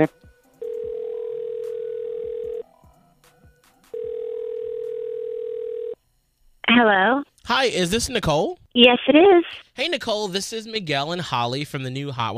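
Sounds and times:
speech: 0:00.0 - 0:00.2, 0:06.8 - 0:12.3
telephone ringback tone while a call is being dialed: 0:00.6 - 0:02.6, 0:04.0 - 0:06.0.

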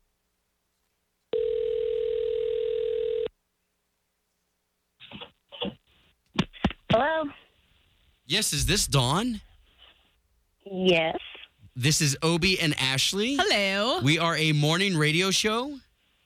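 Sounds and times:
telephone ringing tone: 0:01.3 - 0:03.3
speech: 0:08.3 - 0:09.5, 0:10.9 - 0:11.2, 0:11.8 - 0:15.9.

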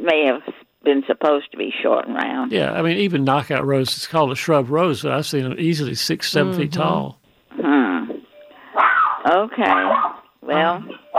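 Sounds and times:
speech: 0:00.0 - 0:07.8, 0:09.3 - 0:11.0
dog barking: 0:08.8 - 0:10.2.

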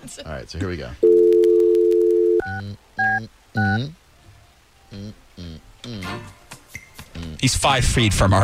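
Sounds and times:
speech: 0:00.0 - 0:01.1, 0:02.5 - 0:04.0, 0:04.9 - 0:06.4, 0:07.2 - 0:08.4
telephone dial tone while placing a call to a request line: 0:01.0 - 0:02.5.

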